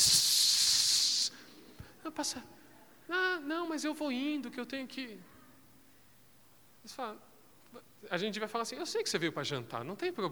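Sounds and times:
pressure cooker hissing steam: 0.0 - 1.4
speech: 2.1 - 5.3, 6.8 - 10.3.

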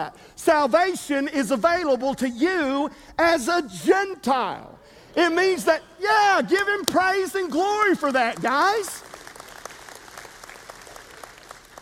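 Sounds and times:
speech: 0.0 - 9.1
audience at a Baptist church clapping during a sermon: 6.5 - 11.8.

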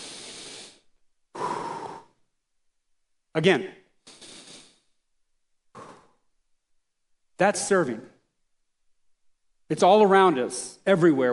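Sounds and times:
deep breath in and out: 0.0 - 2.3, 3.9 - 5.1, 5.7 - 6.4
speech: 3.4 - 3.8, 7.4 - 8.2, 9.7 - 11.3.

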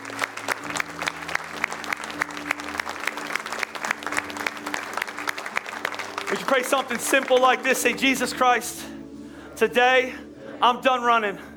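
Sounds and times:
audience clapping: 0.0 - 8.3
speech: 6.4 - 9.0, 9.6 - 11.5.

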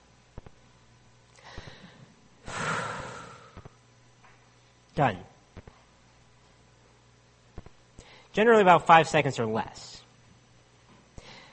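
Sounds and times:
single breath taken: 1.3 - 3.8, 11.2 - 11.5
speech: 5.0 - 5.3, 8.4 - 10.0.

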